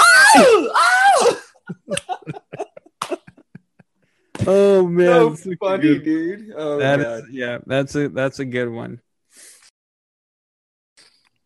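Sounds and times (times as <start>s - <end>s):
man screaming as a spider crawls on him: 0.0s - 1.5s
laughter: 1.6s - 4.0s
speech: 4.5s - 9.0s.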